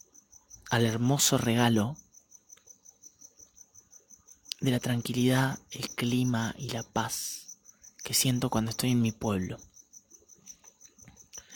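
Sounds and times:
crickets chirping at night: 0:00.0 - 0:11.5
speech: 0:00.7 - 0:02.0, 0:04.6 - 0:07.4, 0:08.0 - 0:09.7.

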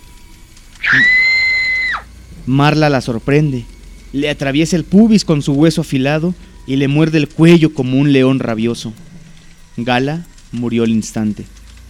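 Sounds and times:
woman screaming while running down stairs: 0:00.8 - 0:02.1
speech: 0:02.4 - 0:09.0, 0:09.8 - 0:11.6.

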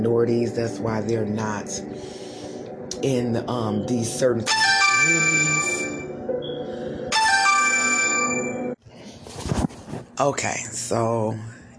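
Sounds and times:
speech: 0:00.0 - 0:02.2, 0:03.0 - 0:05.8, 0:10.2 - 0:11.6
electronic phone ringtone ringing: 0:04.5 - 0:08.8.

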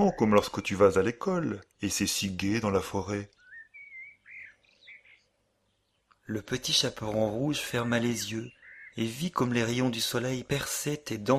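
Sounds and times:
small birds singing in a forest: 0:00.0 - 0:11.3
speech: 0:00.1 - 0:03.4, 0:06.3 - 0:11.3.

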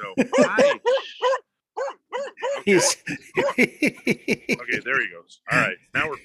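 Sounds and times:
laughter: 0:00.0 - 0:01.3, 0:02.4 - 0:06.2
speech: 0:00.2 - 0:01.2, 0:02.6 - 0:06.2
male dog barking: 0:00.4 - 0:02.6, 0:03.4 - 0:03.6.

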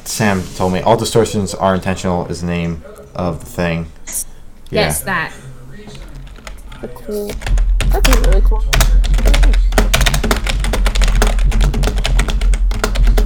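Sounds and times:
speech: 0:00.1 - 0:05.5, 0:06.8 - 0:09.6
typing on a membrane computer keyboard: 0:06.1 - 0:13.2.

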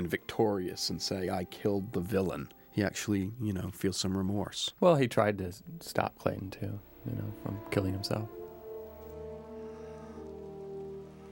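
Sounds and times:
sustained low tonal music: 0:00.0 - 0:04.5, 0:05.5 - 0:11.3
speech: 0:00.0 - 0:08.4
rain falling: 0:07.0 - 0:11.3.

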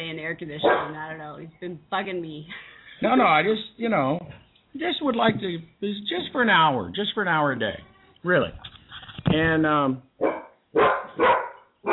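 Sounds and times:
speech: 0:00.3 - 0:11.4
dogs barking: 0:00.6 - 0:01.0, 0:10.2 - 0:11.9.

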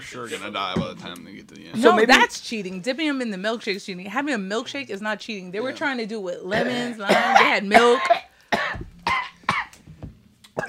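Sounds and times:
speech: 0:00.0 - 0:08.3
man coughing into lavalier microphone: 0:06.5 - 0:09.7.

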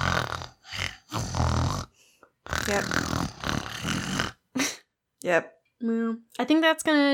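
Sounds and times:
person imitating loud snoring with their voice: 0:00.0 - 0:04.5
speech: 0:02.7 - 0:03.1, 0:05.3 - 0:07.1.

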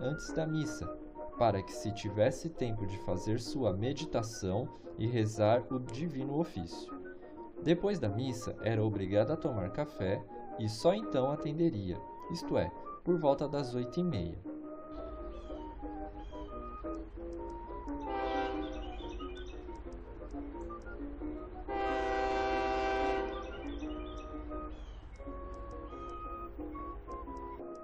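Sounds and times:
speech: 0:00.0 - 0:07.0, 0:07.6 - 0:14.6
faint bird chirps: 0:14.7 - 0:19.8, 0:23.1 - 0:27.6
low rolling noise of the rails: 0:15.0 - 0:27.7
train rumbling as it arrives: 0:15.1 - 0:27.6
train horn blasts: 0:18.0 - 0:19.0, 0:21.6 - 0:23.7, 0:25.2 - 0:26.1.

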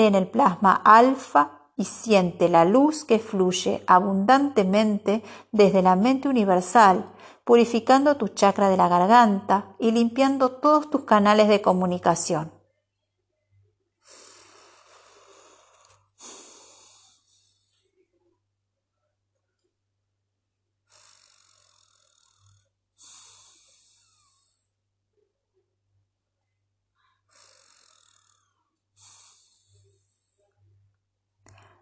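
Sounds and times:
speech: 0:00.0 - 0:12.6
forceful breaths through one nostril during a yoga breathing exercise: 0:14.0 - 0:17.9, 0:20.9 - 0:24.8, 0:27.0 - 0:30.5.

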